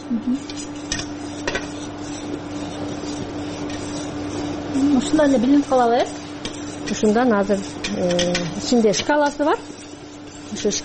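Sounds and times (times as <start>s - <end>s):
steady hum: 0.0s - 10.8s
speech: 0.1s - 0.8s, 5.0s - 6.2s, 6.9s - 9.8s, 10.5s - 10.8s
mixture stirred by hand in a pot: 0.4s - 10.8s.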